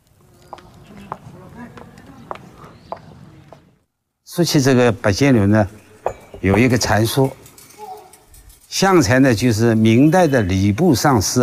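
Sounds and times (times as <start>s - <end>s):
high-heel footsteps echoing with crisp reverb: 0.3s - 3.8s
speech: 4.3s - 5.8s, 6.4s - 7.4s, 8.8s - 11.4s.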